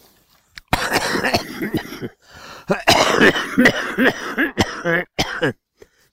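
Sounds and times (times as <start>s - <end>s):
person coughing hard with deep chesty bursts and hacking: 0.7s - 5.6s
throat-clearing: 0.7s - 5.6s.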